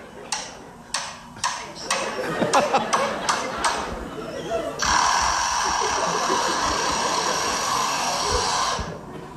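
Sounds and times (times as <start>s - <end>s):
laughter: 2.0s - 8.6s
lyrebird mimicking automatic screwdriver whine: 4.8s - 9.1s.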